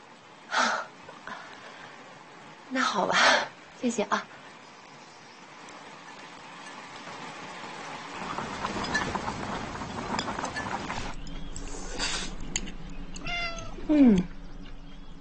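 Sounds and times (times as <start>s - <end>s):
low hum: 0.0s - 15.1s
speech: 2.7s - 4.4s, 13.9s - 14.3s
cat meowing: 13.2s - 13.8s.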